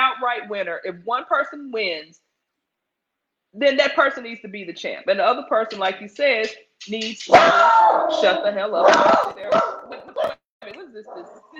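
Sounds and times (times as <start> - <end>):
speech: 0.2 - 2.3, 3.5 - 9.7, 10.9 - 11.5
dog barks: 7.3 - 10.4, 11.0 - 11.5.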